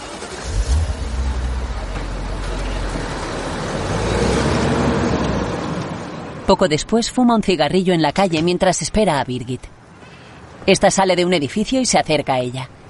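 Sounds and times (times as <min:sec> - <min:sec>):
car driving away down a street: 0:00.0 - 0:06.4
speech: 0:06.5 - 0:09.8, 0:10.6 - 0:12.8.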